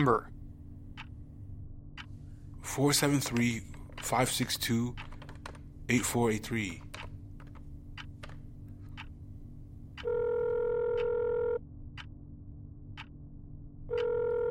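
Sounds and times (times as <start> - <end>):
person speaking: 2.6 - 7.1
steady electronic telephone ringing tone: 10.0 - 11.6, 13.9 - 14.4.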